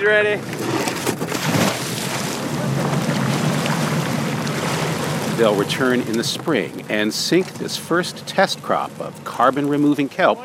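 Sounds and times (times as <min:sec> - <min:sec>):
speech: 0:00.0 - 0:01.0, 0:05.4 - 0:10.4
repurposed lobster boat engine droning: 0:00.0 - 0:10.4
water wash: 0:00.0 - 0:10.4.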